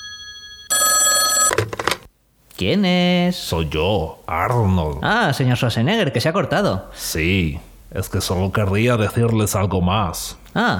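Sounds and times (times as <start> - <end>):
telephone bell ringing loudly: 0.0 - 1.8
speech: 2.6 - 10.7.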